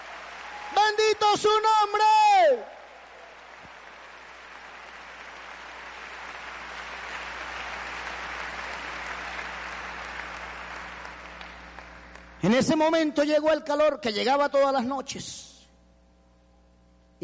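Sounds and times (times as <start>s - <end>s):
large crowd applauding: 0.0s - 12.4s
speech: 0.9s - 2.8s, 12.4s - 15.5s.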